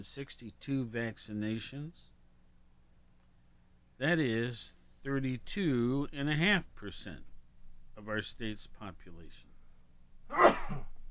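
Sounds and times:
speech: 0.0 - 2.1, 4.0 - 7.3, 8.0 - 9.5
person sneezing: 10.3 - 11.0.

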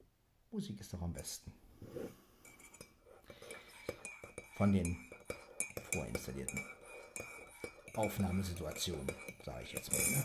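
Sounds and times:
speech: 0.5 - 2.2, 4.6 - 5.1, 5.9 - 7.3, 8.0 - 10.2
ceramic coffee cups clinking together in a toast: 2.5 - 10.2.

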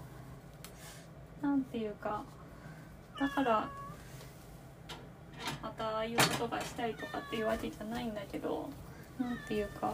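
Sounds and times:
speech: 1.4 - 2.4, 3.2 - 3.8, 5.6 - 9.9
cat meowing loudly: 3.2 - 4.0, 6.8 - 7.6, 9.3 - 9.9.

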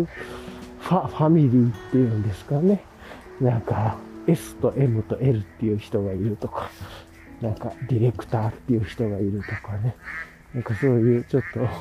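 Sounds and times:
ducks quacking outdoors: 0.0 - 1.1, 5.0 - 11.7
speech: 0.0 - 11.7.

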